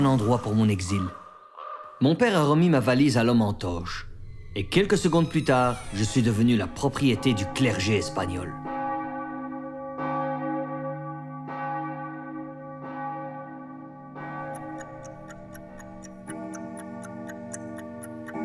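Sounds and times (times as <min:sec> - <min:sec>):
large clock chiming ten o'clock: 0:00.0 - 0:01.2, 0:04.1 - 0:18.4
speech: 0:00.0 - 0:01.2, 0:02.0 - 0:08.7
crisp steady clock ticking: 0:14.4 - 0:18.4.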